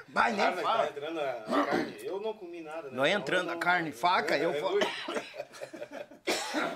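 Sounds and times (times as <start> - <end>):
speech: 0.1 - 6.0
person coughing: 1.5 - 2.0, 4.8 - 5.4, 6.2 - 6.7
laughter: 4.8 - 6.3.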